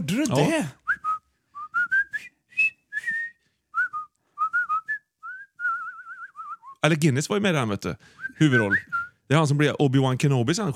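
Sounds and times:
speech: 0.1 - 0.8, 6.8 - 10.7
person whistling a lively marching melody: 0.8 - 6.8, 8.2 - 9.2.

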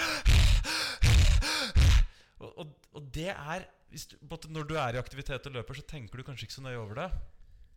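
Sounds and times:
person demonstrating aggressive hyperventilation breathing: 0.0 - 2.3
speech: 3.2 - 7.4.

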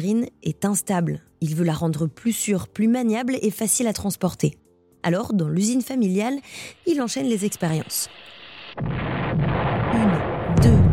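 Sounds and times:
speech: 0.0 - 9.0
loud explosion: 8.7 - 10.9.

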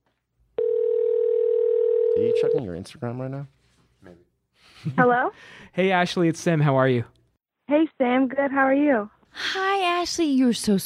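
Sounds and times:
telephone line tone as a call is dialed out: 0.6 - 2.6
speech: 2.3 - 10.8.

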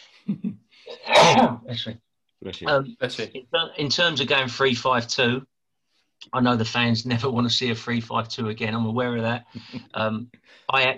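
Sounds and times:
speech: 0.2 - 5.5, 6.2 - 10.9
person sneezing: 0.9 - 1.6.

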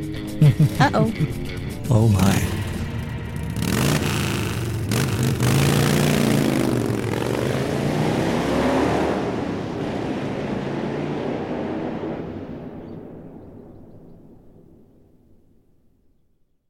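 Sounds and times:
laughter: 0.1 - 2.4
speech: 0.4 - 2.6
distant motorcycle engines revving: 2.5 - 13.8.

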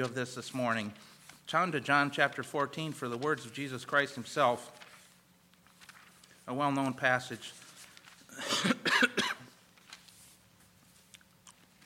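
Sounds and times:
speech: 0.0 - 4.8, 6.5 - 7.6, 8.4 - 9.2
person coughing: 8.3 - 9.6.

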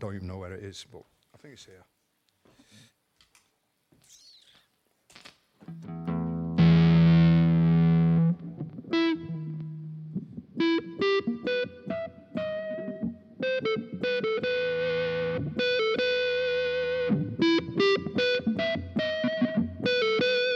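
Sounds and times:
speech: 0.0 - 2.0, 5.6 - 6.1
smooth violin-like electric guitar tone through effects: 5.2 - 20.5.

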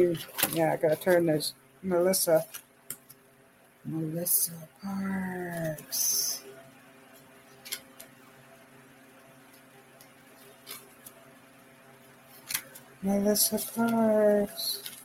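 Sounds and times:
speech: 0.0 - 2.6, 3.8 - 6.4, 13.0 - 14.8
cards being shuffled through a stack: 0.1 - 1.4, 7.6 - 8.2, 9.5 - 11.2, 12.3 - 15.0.

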